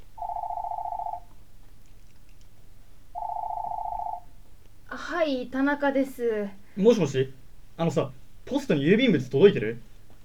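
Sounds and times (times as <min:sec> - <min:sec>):
quiet room hum: 0:00.0 - 0:10.2
home telephone ringing with steady electronic tones: 0:00.2 - 0:01.3, 0:03.2 - 0:04.3
speech: 0:05.1 - 0:09.9.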